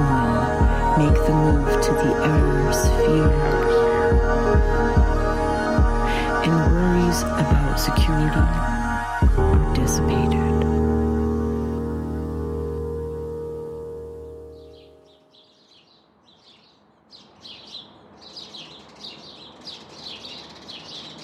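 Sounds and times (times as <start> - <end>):
low sustained tone: 0.0 - 15.3
speech: 1.0 - 5.2, 6.1 - 10.6.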